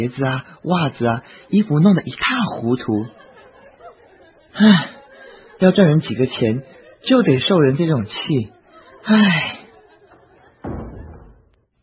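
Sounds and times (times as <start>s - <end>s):
speech: 0.0s - 3.2s, 4.6s - 5.0s, 5.6s - 9.6s
laughter: 0.0s - 11.5s
door being pulled shut: 10.5s - 11.7s.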